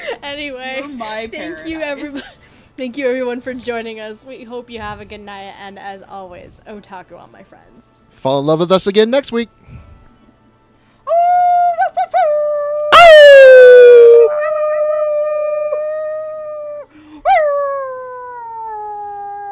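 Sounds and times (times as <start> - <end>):
speech: 0.2 - 9.8
dog howling: 11.1 - 19.4.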